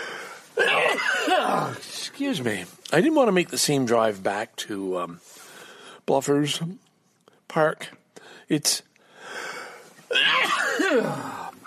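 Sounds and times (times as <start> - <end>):
person sneezing turned away from the microphone: 0.6 - 1.8, 10.1 - 11.6
speech: 1.5 - 5.4, 6.1 - 6.9, 7.5 - 8.9, 10.8 - 11.4.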